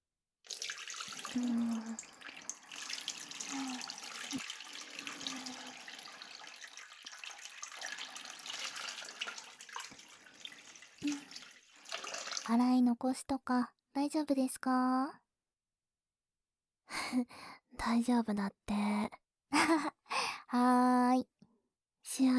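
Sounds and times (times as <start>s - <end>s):
water running from a tap rinsing off foam: 0.5s - 12.6s
speech: 1.4s - 1.7s, 12.5s - 15.2s, 17.1s - 21.3s, 22.1s - 22.3s.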